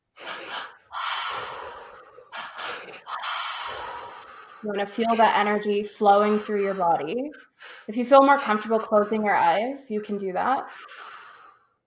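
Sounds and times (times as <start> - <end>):
deep forceful breaths of a rhythmic breathing exercise: 0.0 - 9.6, 10.6 - 11.8
speech: 4.6 - 10.9.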